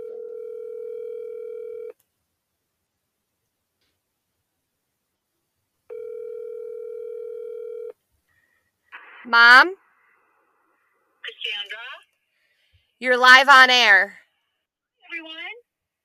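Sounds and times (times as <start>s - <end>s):
telephone ringback tone from unanswered call: 0.0s - 1.9s, 5.9s - 7.9s
speech: 9.3s - 9.8s, 13.0s - 14.2s.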